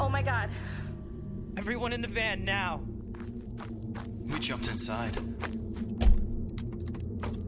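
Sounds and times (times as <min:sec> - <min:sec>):
speech: 0:00.1 - 0:00.7, 0:01.6 - 0:02.9, 0:03.6 - 0:05.6
keys jangling: 0:06.0 - 0:07.4.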